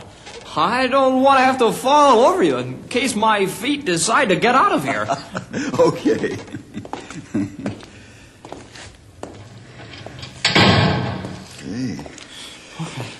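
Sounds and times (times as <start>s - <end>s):
speech: 0.5s - 7.5s
laughter: 4.7s - 7.9s
heavy door slamming shut with a rattling thud: 9.7s - 11.6s.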